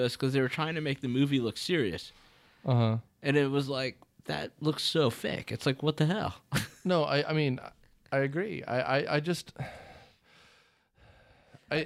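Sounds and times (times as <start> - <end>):
speech: 0.0 - 9.8
heavy breathing close to the microphone: 9.6 - 11.7.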